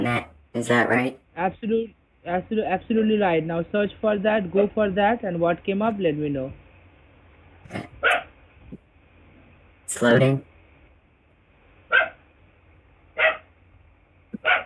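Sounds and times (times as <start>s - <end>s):
speech: 0.0s - 6.6s, 7.7s - 8.2s, 9.9s - 10.5s
dog barking in short sharp bursts: 8.0s - 8.3s, 11.9s - 12.2s, 13.2s - 13.5s, 14.4s - 14.6s.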